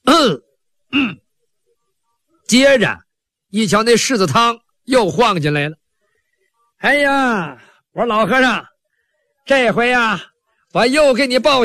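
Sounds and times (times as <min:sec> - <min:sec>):
speech: 0:00.2 - 0:01.2, 0:02.5 - 0:05.8, 0:06.8 - 0:08.7, 0:09.5 - 0:11.6
storyteller imitating a man's cough: 0:00.9 - 0:01.2.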